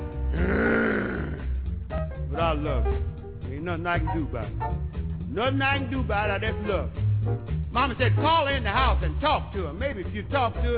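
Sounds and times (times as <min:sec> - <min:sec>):
exaggerated belch: 0:00.3 - 0:01.6
speech: 0:02.5 - 0:10.7.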